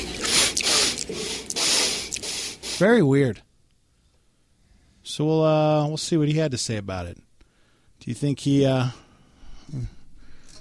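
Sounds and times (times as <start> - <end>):
loud sharp nasal sniffs during a debate: 0.2 - 2.9
speech: 2.8 - 3.4, 5.1 - 7.2, 8.0 - 9.0, 9.7 - 10.0.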